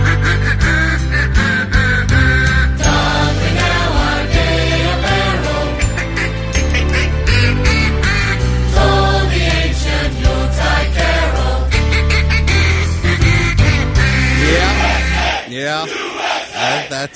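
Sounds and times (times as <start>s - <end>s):
duck quacks arranged into a Christmas carol melody: 0.0s - 4.2s, 5.0s - 9.0s, 11.7s - 17.1s
full musical backing with steady rhythm and bass: 0.0s - 15.4s.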